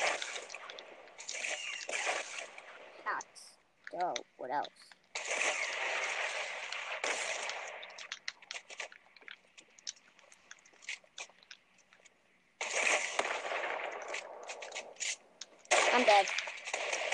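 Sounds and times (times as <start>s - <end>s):
rockets in a video game firing and exploding: 0.0s - 3.2s, 5.1s - 8.9s, 12.6s - 17.1s
speech: 4.0s - 5.0s.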